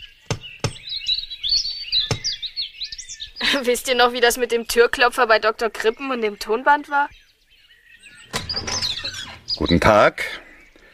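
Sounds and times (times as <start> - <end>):
birds chirping and singing: 0.0 - 10.9
firm knocking on a door: 2.1 - 2.3
speech: 3.5 - 7.2, 9.6 - 10.4.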